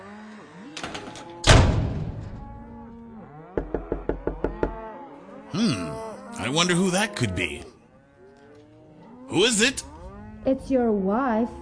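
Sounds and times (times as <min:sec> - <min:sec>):
cow mooing: 0:00.0 - 0:01.5, 0:02.4 - 0:11.6
heavy door slamming shut with a booming thud: 0:00.8 - 0:02.4
farm animals calling: 0:02.4 - 0:11.6
sharp knocks on a door: 0:03.6 - 0:04.8
speech: 0:05.6 - 0:07.7, 0:09.3 - 0:11.6.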